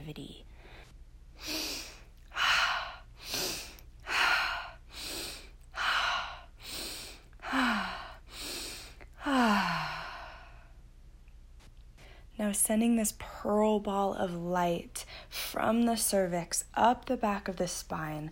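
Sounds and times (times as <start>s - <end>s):
speech: 0.0s - 0.5s, 12.5s - 18.3s
slow deliberate breathing, inhales and exhales: 0.5s - 10.8s.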